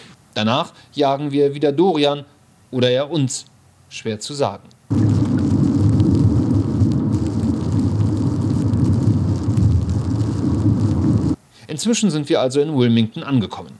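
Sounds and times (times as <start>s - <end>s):
speech: 0.4s - 5.0s, 11.8s - 13.7s
deep low rumble: 4.9s - 11.4s
heavy rain drumming on a car windshield: 4.9s - 11.4s.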